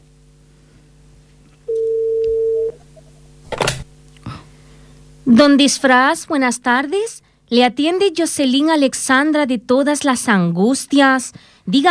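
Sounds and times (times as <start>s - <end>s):
telephone ringback tone over a phone line during outgoing call: 1.7s - 2.8s
speech: 5.3s - 11.8s.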